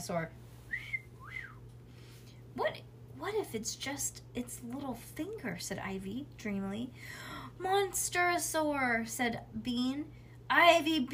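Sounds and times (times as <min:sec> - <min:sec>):
speech: 0:00.0 - 0:00.4, 0:02.6 - 0:11.1
low steady hum: 0:00.0 - 0:11.1
person whistling a short two-part phrase: 0:00.7 - 0:01.6.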